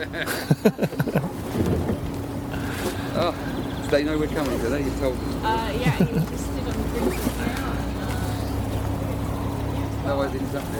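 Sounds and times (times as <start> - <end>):
speech: 0.0 - 1.0, 3.2 - 7.6, 10.1 - 10.7
laughter: 0.0 - 1.5, 5.7 - 6.7
boat motors droning as the boat pulls away: 0.0 - 10.7
water sounds: 0.0 - 10.7
faint indistinct voices: 0.3 - 10.7.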